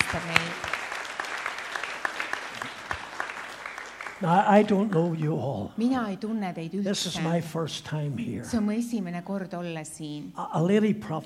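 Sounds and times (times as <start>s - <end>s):
congregation applauding: 0.0s - 5.5s
speech: 0.1s - 0.7s, 4.2s - 11.2s.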